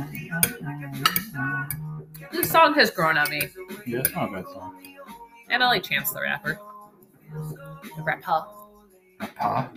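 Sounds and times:
spoon clinking against a dish used for applesauce: 0.2 - 2.6, 3.2 - 5.1
speech: 2.5 - 4.9, 5.5 - 6.7, 7.3 - 8.6, 9.4 - 9.7.

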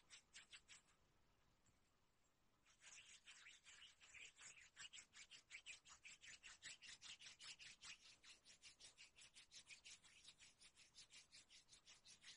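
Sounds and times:
skin being rubbed: 2.7 - 12.3.

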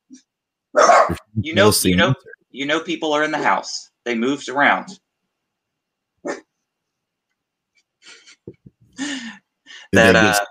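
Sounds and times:
speech: 0.1 - 5.0, 9.9 - 10.4
dogs barking and yelping: 0.7 - 1.3, 6.2 - 6.5.

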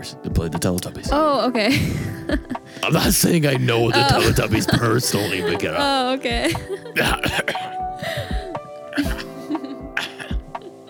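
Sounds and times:
speech: 0.0 - 8.3
laughter: 1.6 - 8.3, 9.0 - 10.8
harsh throat clearing and coughing: 7.0 - 7.8, 10.0 - 10.7.

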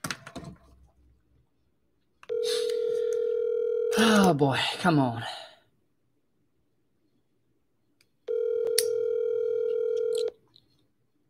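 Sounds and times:
telephone dial tone: 2.3 - 4.0, 8.3 - 10.4
speech: 4.0 - 5.5.

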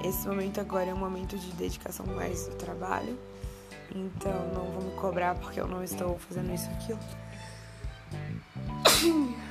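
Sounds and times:
speech: 0.1 - 7.2
person sneezing: 8.8 - 9.4.

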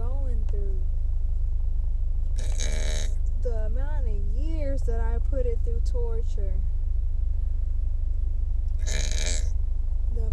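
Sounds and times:
steady low rumble of noise: 0.0 - 10.3
loud throaty burp: 2.4 - 3.2, 8.8 - 9.5
speech: 5.8 - 6.8.

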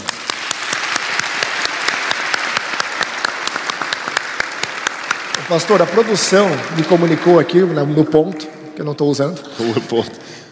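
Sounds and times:
crowd applauding: 0.0 - 8.6
speech: 5.5 - 10.3
laughter: 9.4 - 10.3.

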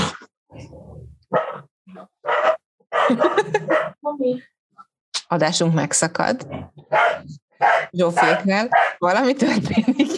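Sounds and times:
dogs barking: 1.2 - 4.0, 6.6 - 9.2
people laughing quietly: 3.0 - 3.9, 9.4 - 10.1
speech: 3.1 - 4.5, 5.3 - 10.1.

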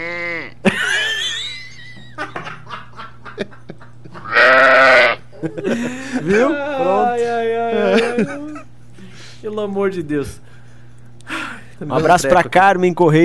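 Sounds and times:
sheep bleating: 0.0 - 0.6, 4.2 - 5.3
laughter: 0.6 - 8.8
speech: 5.6 - 8.4, 9.6 - 10.5, 11.8 - 13.2.

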